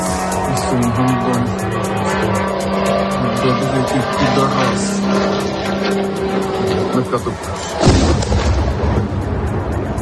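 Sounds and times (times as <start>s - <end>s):
Iranian-made Shahed kamikaze drone engine buzzing overhead: 0.0s - 10.0s
heavy blast-like burst: 7.8s - 10.0s.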